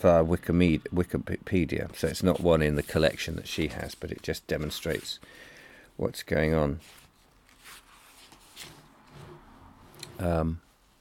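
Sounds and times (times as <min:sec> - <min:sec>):
speech: 0:00.0 - 0:07.0, 0:10.2 - 0:10.6
book page turning: 0:02.0 - 0:05.2, 0:06.8 - 0:09.1.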